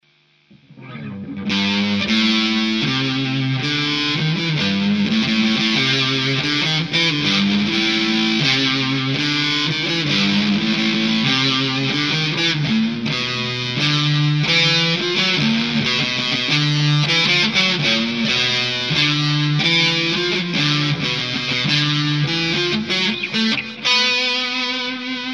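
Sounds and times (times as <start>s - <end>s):
distorted electric guitar with humbucker pickup: 0.0s - 25.3s.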